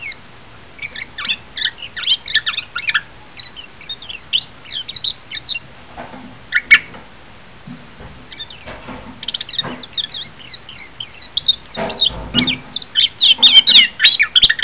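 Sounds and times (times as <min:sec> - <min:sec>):
Japanese white-eye high squeaky twitters: 0:00.0 - 0:05.7, 0:06.5 - 0:06.9, 0:08.3 - 0:14.6
Japanese white-eye lower clucking and knocking sounds: 0:04.1 - 0:14.6.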